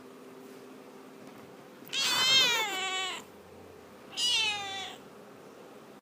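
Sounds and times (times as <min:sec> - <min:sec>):
cat meowing: 0:01.9 - 0:03.3, 0:04.1 - 0:05.0.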